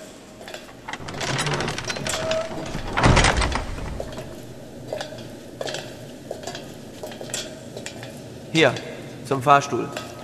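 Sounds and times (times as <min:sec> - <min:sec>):
room noise: 0:00.5 - 0:07.6
automatic keycard-operated sliding door whirring and rattling: 0:00.7 - 0:07.0
automatic door landing with a solid thud: 0:00.8 - 0:04.7
speech: 0:08.5 - 0:10.0.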